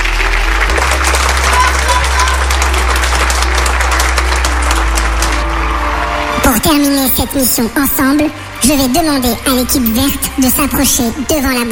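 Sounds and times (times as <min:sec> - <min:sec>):
group applauding: 0:00.0 - 0:07.5
speech: 0:06.7 - 0:11.7.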